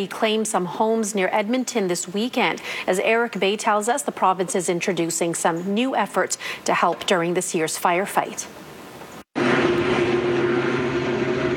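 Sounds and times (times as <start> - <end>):
speech: 0.0 - 8.7
helicopter hovering overhead: 9.4 - 11.5.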